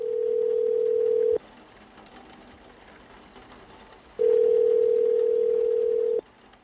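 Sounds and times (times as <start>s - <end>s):
telephone ringback tone through an earpiece: 0.0s - 1.4s, 4.2s - 6.2s.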